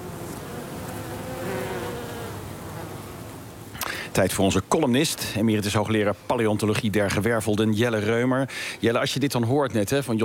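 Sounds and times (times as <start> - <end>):
wild bees, honeybees and hoverflies buzzing while feeding on flowering ivy: 0.0 - 3.8
speech: 4.2 - 10.2.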